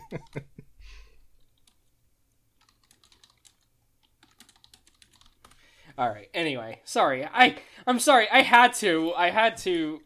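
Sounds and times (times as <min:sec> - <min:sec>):
speech: 0:00.1 - 0:00.5, 0:06.0 - 0:10.0
typing on a computer keyboard while writing a chat message: 0:01.3 - 0:01.9, 0:02.6 - 0:05.6.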